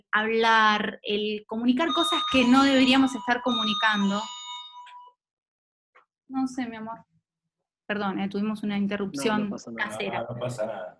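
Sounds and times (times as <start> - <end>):
speech: 0.1 - 4.4, 6.3 - 7.1, 7.9 - 10.9
doorbell with bright sustained electronic chime: 1.8 - 5.2.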